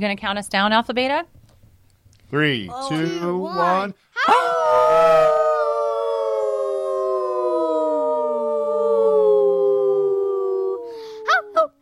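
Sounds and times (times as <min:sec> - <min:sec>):
speech: 0:00.0 - 0:01.4, 0:02.3 - 0:05.5
family members howling together like wolves: 0:04.2 - 0:11.7.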